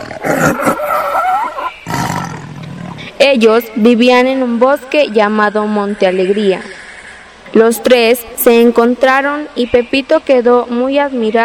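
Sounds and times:
lion roaring: 0.0 - 3.1
speech: 3.2 - 6.8, 7.5 - 11.4.

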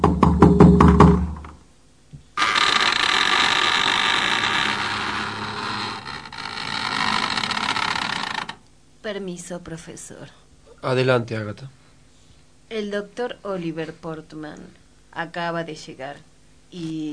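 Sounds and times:
firm knocks on a door: 0.0 - 1.4
steady broad mechanical rumble: 2.4 - 8.7
speech: 9.2 - 11.8, 12.7 - 17.1.

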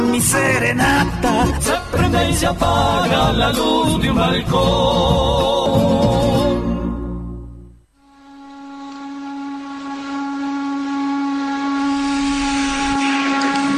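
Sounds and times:
speech: 0.2 - 6.6
chimney steam whistle shrieking over a breathy hiss: 8.0 - 13.7
low rumbling burst: 10.8 - 13.7.

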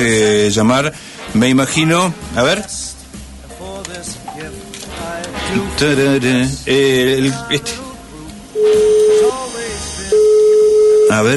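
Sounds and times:
speech: 0.0 - 3.0, 5.5 - 7.8, 11.1 - 11.3
telephone dial tone: 10.2 - 11.2.

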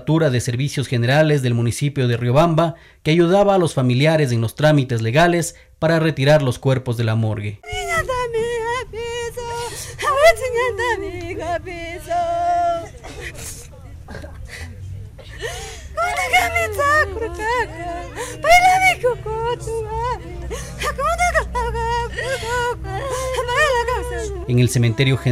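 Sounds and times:
speech: 0.0 - 8.6, 10.2 - 12.6, 16.2 - 25.3
several people weeping and wailing: 7.6 - 24.7
low murmur of a crowd: 7.7 - 24.6.

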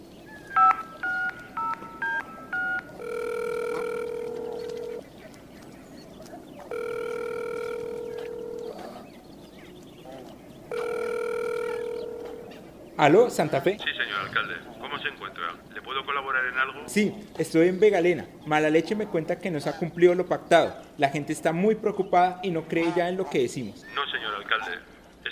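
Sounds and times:
telephone touch-tone dialling beeps: 0.5 - 5.0, 6.7 - 8.9, 10.7 - 12.5
speech: 13.0 - 25.0.

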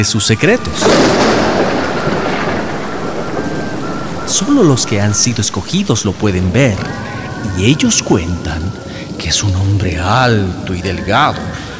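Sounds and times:
speech: 0.0 - 2.2, 4.3 - 11.6
rolling thunder: 0.0 - 10.6
heavy rain: 0.0 - 11.7.

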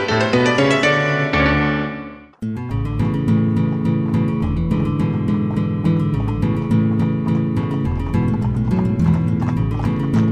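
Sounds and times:
music: 0.0 - 10.3
donkey and horse hooves clip-clopping on a hard road: 2.8 - 10.3.

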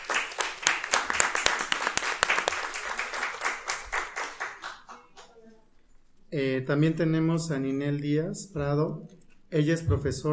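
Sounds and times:
audience applause: 0.0 - 5.2
speech: 6.4 - 10.3.

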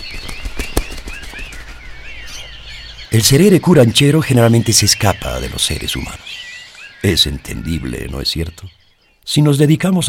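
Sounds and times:
bird wings flapping as it takes off: 0.0 - 1.9
high chirping bird calls: 0.0 - 10.0
steady outdoor noise: 0.0 - 10.0
speech: 3.1 - 6.4, 7.0 - 10.0.

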